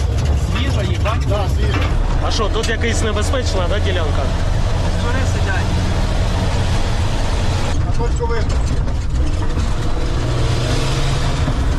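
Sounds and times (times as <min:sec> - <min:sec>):
loud steady engine rumble: 0:00.0 - 0:11.7
speech: 0:02.3 - 0:06.0, 0:08.0 - 0:08.8.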